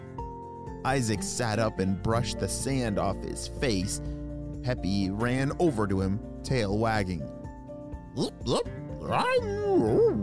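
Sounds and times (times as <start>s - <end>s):
speech: 0.8s - 7.4s, 8.2s - 10.2s
person's voice imitating a dog barking: 9.4s - 10.2s.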